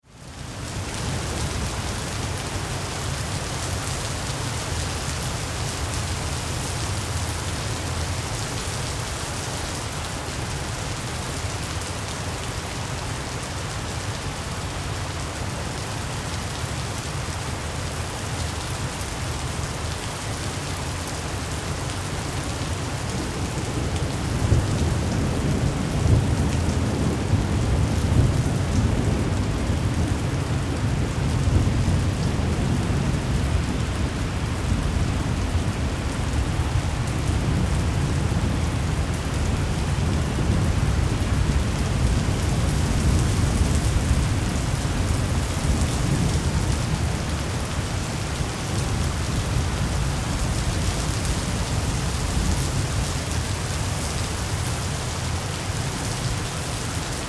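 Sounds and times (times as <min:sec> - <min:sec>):
rain splattering: 0:00.1 - 0:57.2
thunderstorm: 0:23.3 - 0:53.3.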